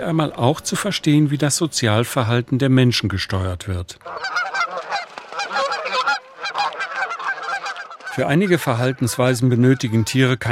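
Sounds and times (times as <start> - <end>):
speech: 0.0 - 4.5, 8.2 - 10.5
flock of geese honking: 4.0 - 10.5.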